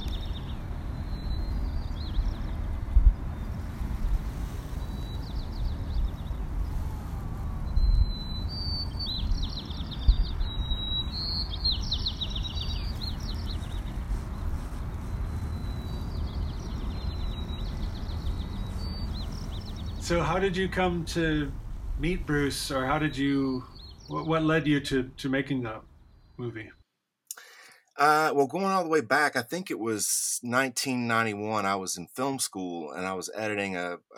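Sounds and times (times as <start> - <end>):
several birds singing and calling: 0.0 - 6.9, 7.7 - 28.3
steady low rumble of outdoor noise: 0.0 - 26.7
speech: 20.1 - 26.8, 28.0 - 34.1.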